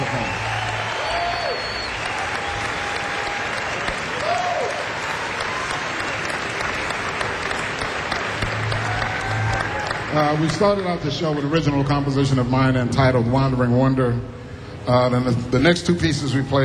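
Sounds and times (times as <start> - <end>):
audience cheers: 0.0 - 10.8
audience applause: 0.0 - 11.5
faint whistles from an audience: 0.1 - 2.8
speech: 10.2 - 16.6.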